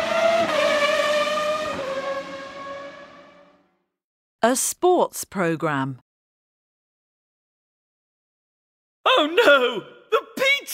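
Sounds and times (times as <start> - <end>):
race car speeding past in a motor race: 0.0 - 3.6
speech: 4.4 - 6.0, 9.2 - 10.7.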